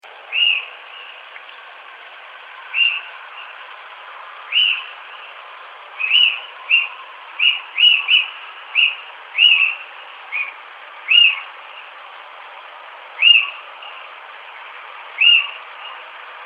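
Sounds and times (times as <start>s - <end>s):
little owl calling: 0.3s - 1.5s, 2.6s - 3.6s, 4.5s - 5.3s, 6.0s - 11.9s, 13.2s - 14.1s, 15.1s - 16.1s.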